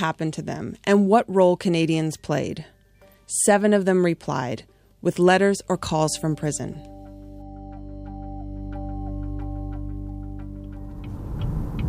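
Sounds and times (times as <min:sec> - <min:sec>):
speech: 0:00.0 - 0:02.7, 0:03.3 - 0:06.9
car driving through northwestern Florida, engine and road drone: 0:09.5 - 0:11.8.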